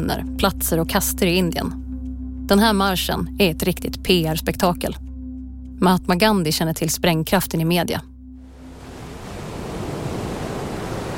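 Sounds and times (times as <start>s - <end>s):
speech: 0.0s - 1.8s, 2.5s - 5.1s, 5.8s - 8.1s
Arabian Sea waves surging onto the shore at Dandi India: 8.6s - 11.1s.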